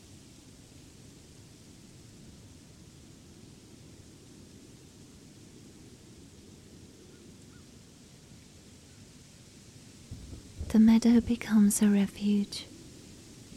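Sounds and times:
deep low rumble: 0:10.1 - 0:12.6
heavy rain pouring: 0:10.1 - 0:12.8
speech: 0:10.8 - 0:12.7.

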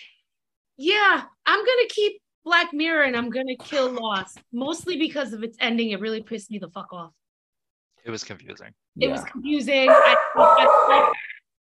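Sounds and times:
speech: 0:00.8 - 0:07.2, 0:08.0 - 0:11.4
female dog barking: 0:09.8 - 0:11.2.

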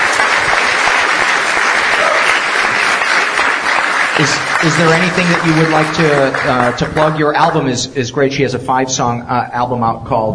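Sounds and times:
audience applause: 0:00.0 - 0:07.7
speech: 0:04.2 - 0:10.3.

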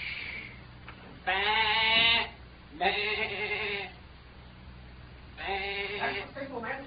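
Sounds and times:
faint low hum: 0:00.0 - 0:06.8
person imitating sheep bleats as a signal: 0:01.3 - 0:04.0, 0:05.4 - 0:06.4.

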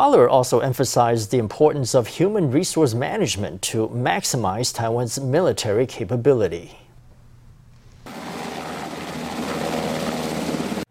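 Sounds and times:
speech: 0:00.0 - 0:06.8
Black Hawk helicopter rotor thumping overhead: 0:08.1 - 0:10.8.

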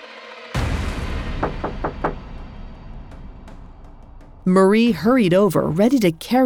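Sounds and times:
knocking on a door: 0:01.4 - 0:02.4
speech: 0:04.5 - 0:06.4.

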